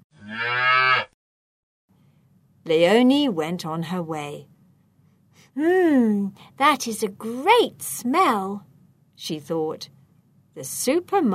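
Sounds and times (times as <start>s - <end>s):
cow mooing: 0.2s - 1.2s
speech: 2.7s - 4.5s, 5.6s - 10.0s, 10.6s - 11.3s.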